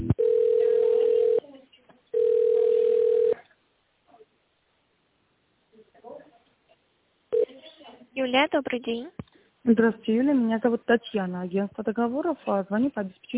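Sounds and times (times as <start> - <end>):
telephone ringback tone while waiting to be connected to an operator: 0.2 - 1.4, 2.1 - 3.4
speech: 8.3 - 13.3.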